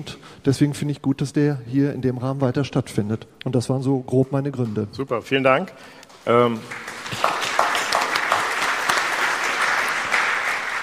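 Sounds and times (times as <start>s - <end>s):
speech: 0.0s - 7.3s
small group applauding: 6.1s - 10.8s.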